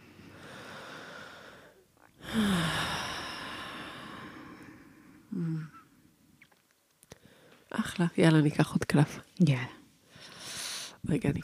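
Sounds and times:
long deep breath: 0:00.0 - 0:05.8, 0:07.2 - 0:07.7, 0:10.0 - 0:11.0
speech: 0:08.0 - 0:09.8, 0:11.1 - 0:11.4.

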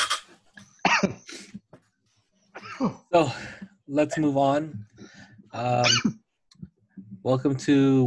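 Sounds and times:
man coughing after vape hit: 0:00.8 - 0:01.3, 0:02.6 - 0:03.0
speech: 0:02.8 - 0:04.9, 0:05.5 - 0:06.2, 0:07.2 - 0:08.0.

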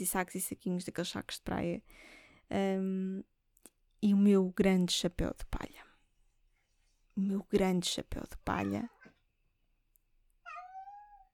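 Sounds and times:
speech: 0:00.0 - 0:03.3, 0:04.0 - 0:05.9, 0:07.2 - 0:09.0
cat giving a drawn-out meow: 0:10.4 - 0:11.3.

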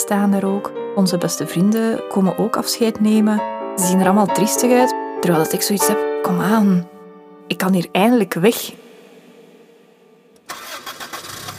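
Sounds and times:
speech: 0:00.1 - 0:08.8
taxi engine cranking and starting: 0:10.4 - 0:11.5.

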